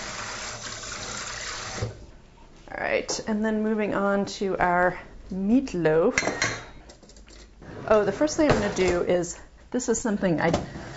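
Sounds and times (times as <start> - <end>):
tap water running into a sink rinsing a potato peeler and knife: 0.0 - 2.0
speech: 3.0 - 6.7, 7.9 - 10.8.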